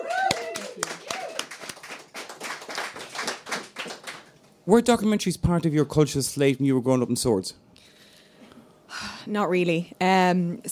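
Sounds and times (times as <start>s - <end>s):
crowd cheering and whooping: 0.0s - 4.2s
crowd applauding: 0.0s - 4.4s
speech: 4.7s - 7.7s, 9.3s - 10.6s.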